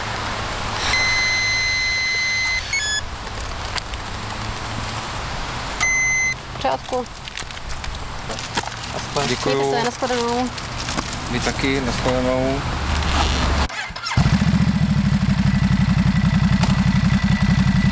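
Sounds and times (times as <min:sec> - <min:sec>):
low traffic rumble at Červenohorské sedlo: 0:00.0 - 0:17.9
electronic breathalyzer tone during exhale into tube: 0:00.8 - 0:03.0, 0:05.8 - 0:06.4
speech: 0:06.6 - 0:07.2, 0:09.2 - 0:10.7, 0:11.3 - 0:12.8.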